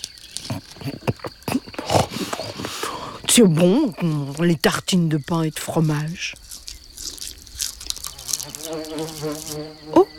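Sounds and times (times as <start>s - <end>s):
crisp crunching and clicking: 0.0s - 9.6s
speech: 3.4s - 6.4s, 8.7s - 10.1s
fly buzzing while circling: 6.4s - 10.1s.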